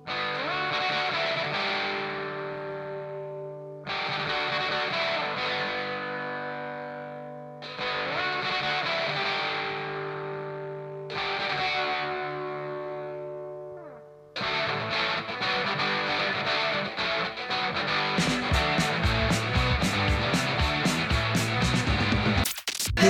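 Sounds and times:
distorted guitar chords in early 1980s Northern Irish punk rock song: 0:00.0 - 0:23.0
early 1980s Northern Irish punk rock band with drums and cymbals: 0:17.9 - 0:23.0.

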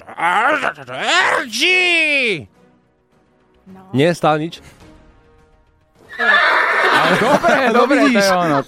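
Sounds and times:
speech: 0:00.2 - 0:02.6, 0:03.7 - 0:04.8, 0:06.2 - 0:08.6
horse neighing: 0:06.0 - 0:07.2
laughter: 0:06.2 - 0:08.6.

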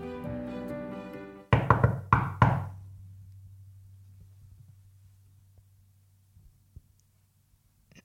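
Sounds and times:
knocking on a door: 0:01.5 - 0:02.8
low ringing hum: 0:02.7 - 0:06.7.

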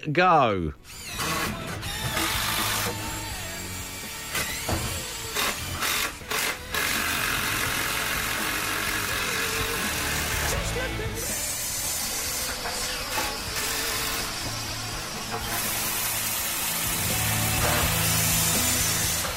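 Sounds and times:
faint music track: 0:00.0 - 0:19.3
power tools whirring and grinding: 0:00.8 - 0:19.3.

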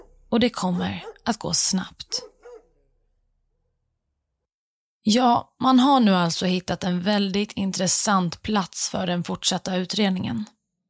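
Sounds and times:
police search dog barking: 0:00.0 - 0:01.3, 0:02.1 - 0:03.0
speech: 0:00.3 - 0:02.3, 0:05.0 - 0:10.6.

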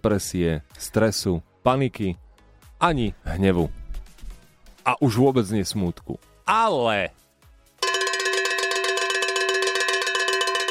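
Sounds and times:
speech: 0:00.0 - 0:02.2, 0:02.8 - 0:03.8, 0:04.8 - 0:07.2
cowbell clanging: 0:07.8 - 0:10.6.

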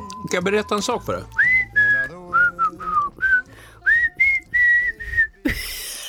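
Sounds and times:
speech: 0:00.2 - 0:01.4
person whistling a short wavering tune: 0:01.3 - 0:05.5.

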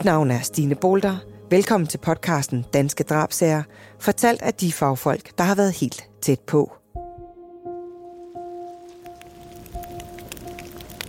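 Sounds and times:
speech: 0:00.0 - 0:06.8
low humming tone: 0:07.0 - 0:11.0
rain pattering on a surface: 0:08.5 - 0:11.0.

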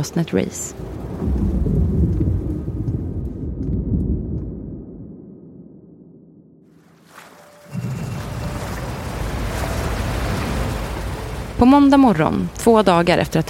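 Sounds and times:
speech: 0:00.0 - 0:01.8, 0:11.6 - 0:13.4
steady rain: 0:00.0 - 0:03.8, 0:06.9 - 0:13.4
loud broadband rush of wind and rain: 0:00.0 - 0:04.5, 0:07.7 - 0:13.4
deep rolling thunder of a heavy thunderstorm: 0:00.7 - 0:06.7, 0:07.7 - 0:12.2.

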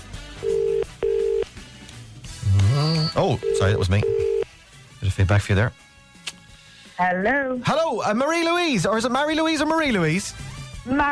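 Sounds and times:
outgoing phone call ringback tone: 0:00.4 - 0:01.5, 0:02.7 - 0:04.5
speech: 0:03.2 - 0:04.3, 0:05.0 - 0:05.8, 0:07.0 - 0:11.0.

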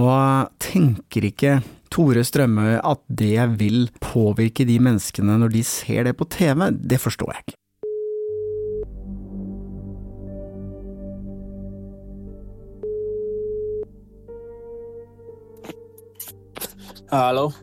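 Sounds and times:
speech: 0:00.0 - 0:07.6, 0:17.1 - 0:17.6
telephone ringback tone while placing call: 0:07.8 - 0:08.9, 0:12.8 - 0:13.9.

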